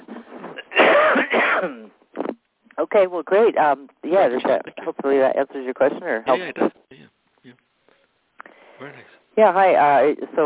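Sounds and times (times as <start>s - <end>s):
person with a slight cold coughing: 0.6s - 1.9s
speech: 2.9s - 6.8s, 8.8s - 10.4s.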